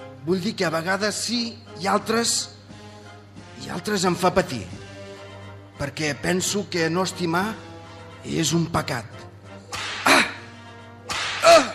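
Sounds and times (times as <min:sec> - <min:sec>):
speech: 0:00.2 - 0:02.6, 0:03.6 - 0:04.8, 0:05.8 - 0:09.3
whip cracking: 0:09.7 - 0:10.4, 0:11.1 - 0:11.7.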